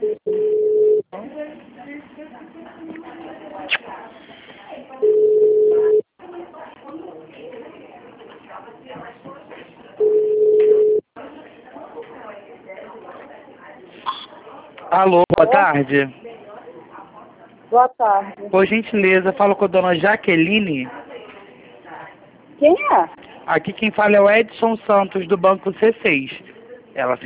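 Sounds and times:
telephone ringback tone on a call to a bank customer: 0.0s - 1.0s, 5.0s - 6.0s, 10.0s - 11.0s
noise: 0.0s - 27.2s
speech: 15.0s - 16.2s, 17.7s - 21.0s, 22.6s - 26.4s, 27.0s - 27.2s.

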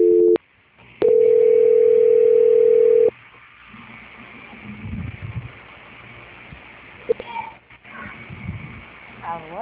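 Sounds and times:
telephone line tone during a call transfer: 0.0s - 0.4s, 1.0s - 3.1s.

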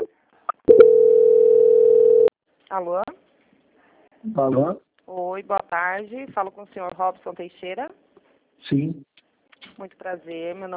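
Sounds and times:
steady mid-pitched telephone line tone during bank call transfer: 0.0s - 2.3s
telephone line clicks and blips during call transfer: 0.7s - 2.3s
speech: 2.7s - 3.0s, 4.2s - 9.1s, 9.8s - 10.7s.

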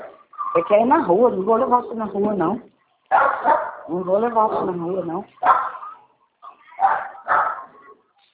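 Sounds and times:
speech: 0.6s - 3.2s, 3.9s - 5.8s
mixed-breed dog barking: 3.1s - 3.9s, 5.4s - 8.0s.

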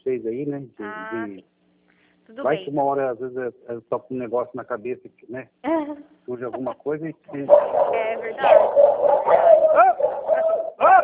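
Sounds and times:
speech: 0.2s - 1.6s, 2.3s - 10.7s
dog giving whining barks and yips: 7.4s - 11.0s.

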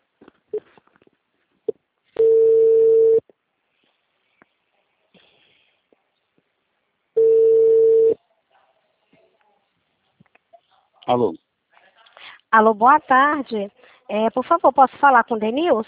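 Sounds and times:
ringback tone on an outgoing telephone call: 2.2s - 3.2s, 7.2s - 8.2s
speech: 11.1s - 11.4s, 12.5s - 15.8s.

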